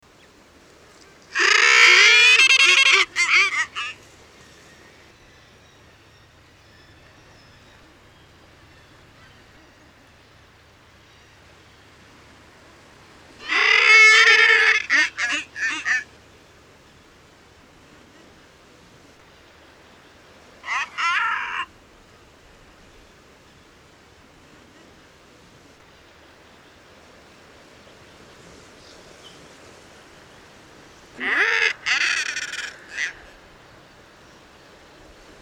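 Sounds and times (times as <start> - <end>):
guillemot troil calling: 1.3 - 4.1, 13.4 - 16.1, 20.6 - 21.7, 31.1 - 33.4.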